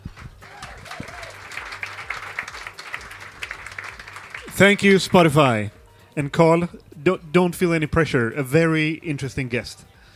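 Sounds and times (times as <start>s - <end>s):
audience applauding warmly: 0.0s - 5.7s
speech: 4.6s - 9.9s.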